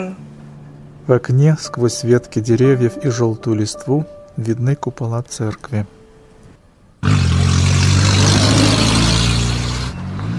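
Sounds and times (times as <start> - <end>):
speech: 0.0 - 0.2, 1.1 - 6.0
minibus speeding through town streets and stopping: 7.0 - 10.3.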